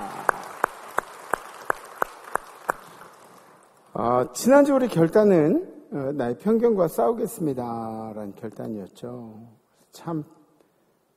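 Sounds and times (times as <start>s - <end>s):
crowd clapping in unison in a reverberant room: 0.0s - 3.9s
speech: 4.0s - 10.4s.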